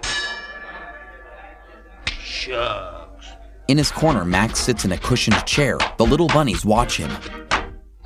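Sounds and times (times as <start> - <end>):
boxing ring bell clanging: 0.0 - 1.7
speech: 2.4 - 3.0, 3.7 - 7.5.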